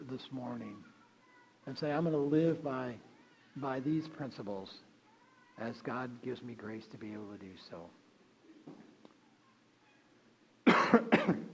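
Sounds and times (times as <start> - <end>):
speech: 0.1 - 0.9, 1.6 - 4.9, 5.6 - 8.0, 10.9 - 11.5
person coughing harshly: 10.6 - 11.5.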